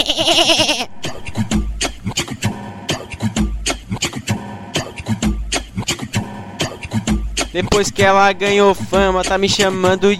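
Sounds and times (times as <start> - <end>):
human voice imitating a young goat bleating: 0.0 - 1.0
thumping electronic dance beat: 1.0 - 10.1
speech: 7.6 - 10.1.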